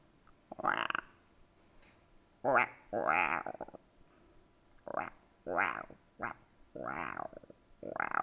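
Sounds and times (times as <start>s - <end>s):
frogs croaking in throaty rattling bursts: 0.5s - 1.2s, 2.4s - 3.8s, 4.8s - 8.2s.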